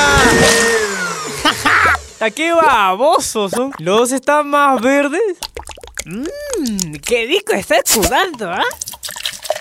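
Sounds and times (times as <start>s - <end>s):
kitchen blender running: 0.0s - 3.4s
laughter: 1.3s - 2.0s
speech: 2.2s - 8.8s.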